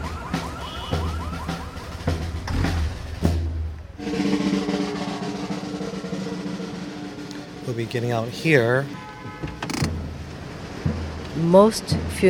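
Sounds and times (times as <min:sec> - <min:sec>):
car alarms set off by a marching band's bass drum: 0:00.0 - 0:02.4
low rumbling street noise at a parade: 0:00.0 - 0:12.2
speech: 0:07.8 - 0:09.0, 0:11.4 - 0:12.2.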